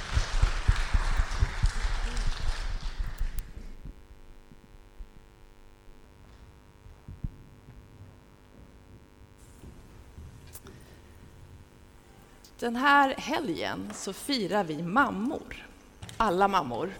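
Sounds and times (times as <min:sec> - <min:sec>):
audience applause: 0:00.0 - 0:03.8
faint low hum: 0:00.0 - 0:16.9
speech: 0:12.6 - 0:16.9.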